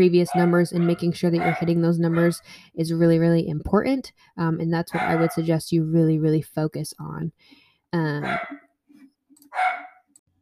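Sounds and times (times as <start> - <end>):
speech: 0.0 - 8.6
dog barking: 0.3 - 2.4, 4.9 - 5.4, 8.2 - 8.7, 9.5 - 10.1.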